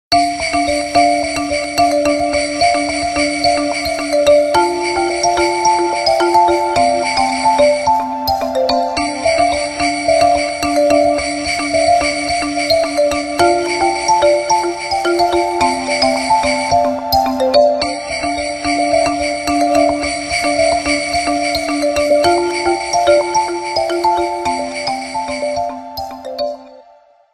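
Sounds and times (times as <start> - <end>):
ringtone: 0.1 - 27.0.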